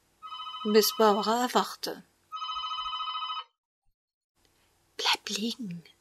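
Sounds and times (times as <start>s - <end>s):
telephone bell ringing: 0.2s - 1.3s, 2.3s - 3.6s
speech: 0.6s - 2.1s, 5.3s - 5.9s.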